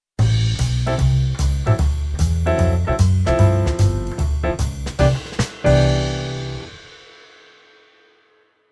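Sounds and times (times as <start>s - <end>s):
jazz piano on keyboard: 0.2s - 6.9s.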